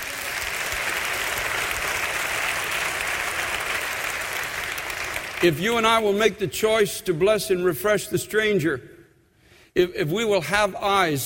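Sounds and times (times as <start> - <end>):
church audience applauding: 0.0 - 5.6
speech: 5.4 - 8.9, 9.8 - 11.2.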